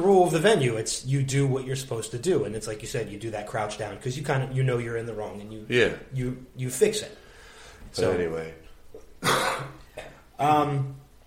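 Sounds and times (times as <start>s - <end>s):
speech: 0.1s - 7.2s, 7.9s - 8.6s, 9.2s - 9.8s, 10.4s - 11.0s
person coughing: 9.2s - 10.3s.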